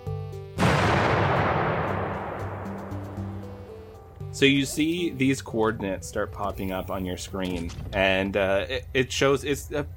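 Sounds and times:
low musical tones: 0.0 - 9.9
distant explosion rolling into a long rumble: 0.6 - 3.7
speech: 4.4 - 9.9.

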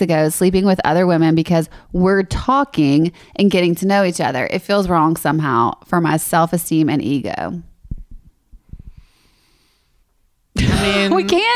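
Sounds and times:
speech: 0.0 - 7.7, 10.8 - 11.5
deep breath through the nose into a microphone: 8.6 - 10.0.

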